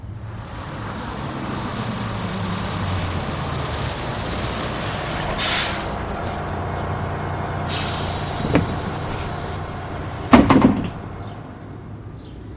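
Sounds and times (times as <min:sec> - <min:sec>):
city bus engine idling: 0:00.0 - 0:11.6
city bus air brakes hissing: 0:04.2 - 0:06.4, 0:07.7 - 0:11.1
bus mechanical clunk: 0:08.2 - 0:11.1.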